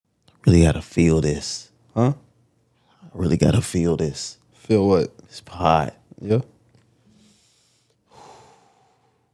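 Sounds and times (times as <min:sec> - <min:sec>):
speech: 0:00.4 - 0:02.2, 0:03.1 - 0:06.5
deep airy inhale drawn sharply through the nose: 0:07.0 - 0:09.3.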